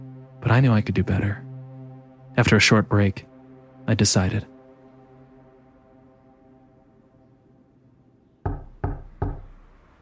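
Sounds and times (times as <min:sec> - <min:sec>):
speech: 0:00.4 - 0:01.4, 0:02.4 - 0:03.3, 0:03.9 - 0:04.5
firm knocking on a door: 0:08.4 - 0:09.6.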